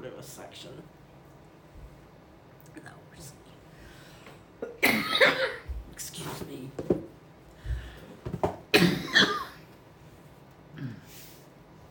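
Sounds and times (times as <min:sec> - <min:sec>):
speech: 0:00.2 - 0:01.0, 0:02.8 - 0:03.4
person coughing: 0:04.6 - 0:05.7, 0:08.7 - 0:09.7.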